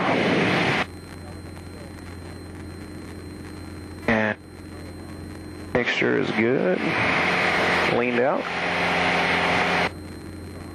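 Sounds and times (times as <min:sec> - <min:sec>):
small airplane engine drone inside the cockpit at traffic pattern altitude: 0:00.0 - 0:10.7
speech: 0:06.0 - 0:09.0.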